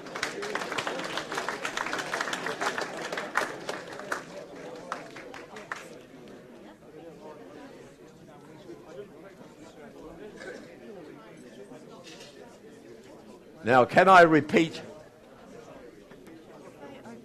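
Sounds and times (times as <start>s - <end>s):
room full of people clapping together: 0.0s - 6.0s
murmured crowd chatter as people settle: 0.0s - 17.2s
speech: 13.6s - 14.9s.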